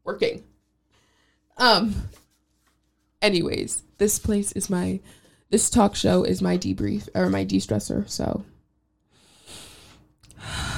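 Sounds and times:
speech: 0:01.6 - 0:02.2, 0:03.2 - 0:08.5
person breathing in and out: 0:09.1 - 0:10.7.

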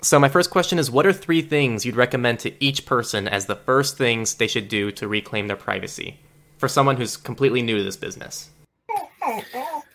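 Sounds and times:
speech: 0:00.0 - 0:08.6, 0:09.2 - 0:09.9
dog whining in the house: 0:08.9 - 0:09.9.

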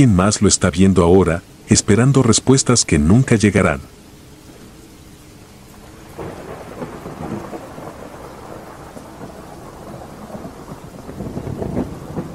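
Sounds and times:
speech: 0:00.0 - 0:04.0
torrential rain pouring down: 0:00.0 - 0:12.3
low rumbling thunder: 0:06.0 - 0:12.3.

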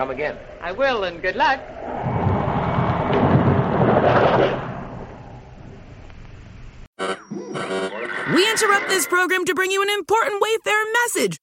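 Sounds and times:
speech: 0:00.0 - 0:02.0, 0:08.6 - 0:11.4
thunder rumbling: 0:00.0 - 0:06.9.

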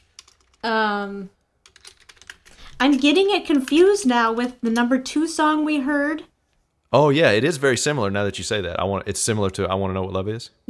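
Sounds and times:
typing on a computer keyboard: 0:00.0 - 0:00.6, 0:01.6 - 0:04.6
speech: 0:00.6 - 0:01.4, 0:02.8 - 0:06.3, 0:06.9 - 0:10.6.

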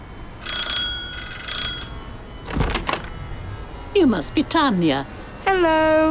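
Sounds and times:
doorbell ringing: 0:00.4 - 0:02.7
door opening clunk and rattle: 0:02.4 - 0:03.2
speech: 0:04.0 - 0:06.0.

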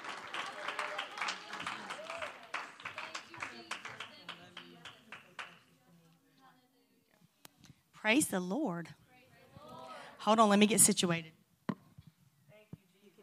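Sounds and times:
audience clapping hands in welcome: 0:00.0 - 0:05.8
speech: 0:08.0 - 0:09.0, 0:10.2 - 0:11.4.

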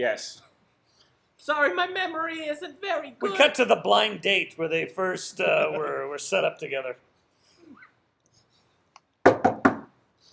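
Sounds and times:
speech: 0:00.0 - 0:00.5, 0:01.4 - 0:07.1
firm knocking on a door: 0:09.2 - 0:09.9.

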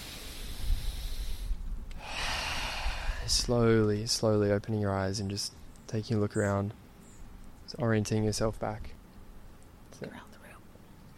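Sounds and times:
deep breaths drawn in through the nose during a guided relaxation exercise: 0:00.0 - 0:03.5
speech: 0:03.3 - 0:06.8, 0:07.7 - 0:09.0, 0:10.0 - 0:10.3.

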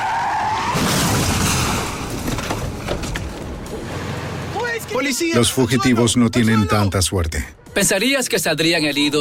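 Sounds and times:
car tire squeal during a police chase: 0:00.0 - 0:02.2
car crash ending a police chase: 0:00.0 - 0:04.5
speech: 0:05.0 - 0:09.2.

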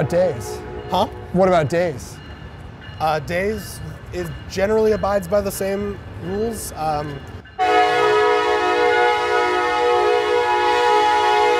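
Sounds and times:
passing train horn sounding a sustained chord: 0:00.0 - 0:01.4, 0:07.6 - 0:11.5
speech: 0:00.0 - 0:02.2, 0:03.0 - 0:07.4
passing train low rolling rumble: 0:00.0 - 0:11.5.

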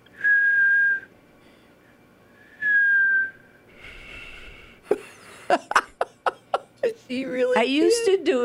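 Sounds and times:
person practicing whistling by blowing out: 0:00.2 - 0:01.1, 0:02.4 - 0:03.6
breathy airy whistling attempt: 0:00.2 - 0:05.0
laughter: 0:04.9 - 0:08.3
speech: 0:05.5 - 0:05.8, 0:07.1 - 0:08.4.

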